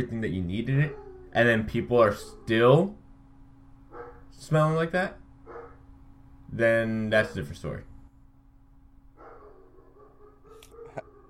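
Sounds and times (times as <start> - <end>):
speech: 0.0 - 3.0, 4.3 - 5.2, 6.5 - 7.9
dog whimpery yips: 0.8 - 1.4, 3.9 - 4.3, 5.5 - 5.8, 9.2 - 11.2
dog barking: 3.9 - 4.3, 5.4 - 5.8, 9.2 - 11.2.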